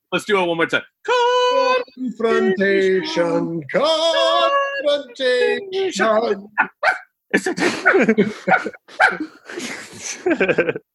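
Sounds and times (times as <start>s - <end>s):
speech: 0.1s - 10.9s
laughter: 1.6s - 3.4s, 4.0s - 6.6s, 7.3s - 10.9s
dogs barking in another room: 6.6s - 7.1s, 7.9s - 9.3s.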